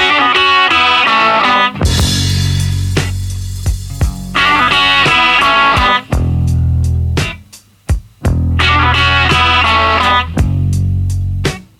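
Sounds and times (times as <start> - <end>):
loud rock song with distorted guitar riff and slap-echo vocal: 0.0 - 11.7.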